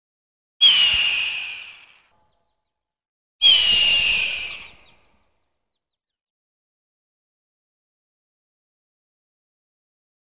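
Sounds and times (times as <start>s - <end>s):
hawk screaming: 0.6s - 2.1s, 3.4s - 5.0s.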